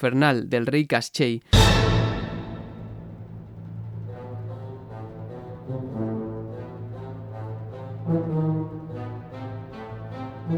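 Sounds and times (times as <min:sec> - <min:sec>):
speech: 0:00.0 - 0:02.0
orchestra hit sample from the first note of a ballet piece: 0:01.5 - 0:05.7
sustained brassy tonal chord: 0:01.6 - 0:10.5.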